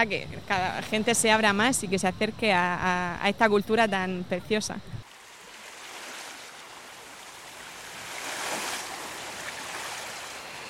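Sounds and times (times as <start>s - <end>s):
speech: 0.0s - 5.0s
sea waves breaking on a shore: 5.0s - 10.6s.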